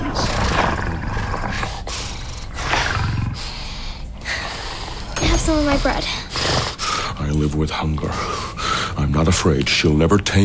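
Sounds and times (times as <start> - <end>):
lion roaring: 0.0 - 3.7
speech: 5.5 - 6.2, 7.2 - 10.4.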